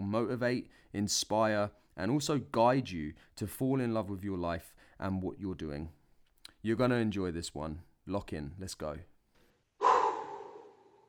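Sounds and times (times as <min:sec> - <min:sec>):
speech: 0:00.1 - 0:06.0, 0:06.6 - 0:09.1
deep deliberate breath out in a breathing exercise: 0:09.4 - 0:11.0.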